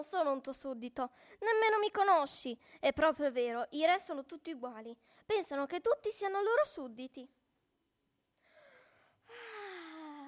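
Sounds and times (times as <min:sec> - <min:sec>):
speech: 0:00.0 - 0:07.4
drawn-out yawn: 0:08.5 - 0:10.2.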